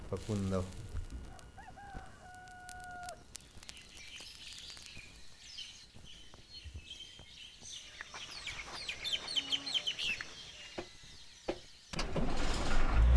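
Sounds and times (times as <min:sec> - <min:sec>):
birds chirping and twittering: 0:00.0 - 0:12.6
speech: 0:00.1 - 0:00.9
rooster crowing: 0:01.2 - 0:03.3.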